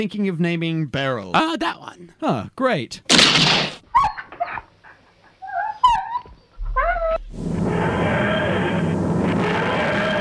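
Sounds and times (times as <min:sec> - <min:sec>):
speech: 0:00.0 - 0:03.8
dog whimpering while giving birth to puppies: 0:05.3 - 0:07.3
loud rumbling noise: 0:07.3 - 0:10.1.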